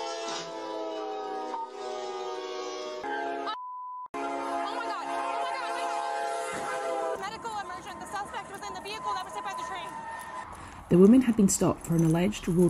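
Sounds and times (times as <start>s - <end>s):
train horn blaring: 0.0s - 3.6s, 4.2s - 10.4s
speech: 8.6s - 10.3s, 10.9s - 12.6s.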